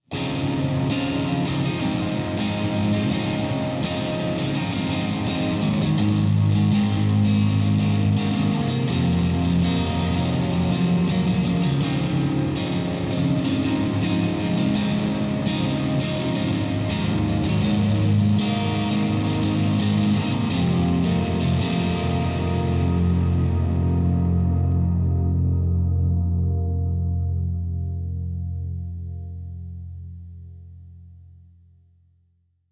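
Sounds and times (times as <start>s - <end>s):
Jazzmaster electric guitar with ghost echo: 0.0s - 31.3s.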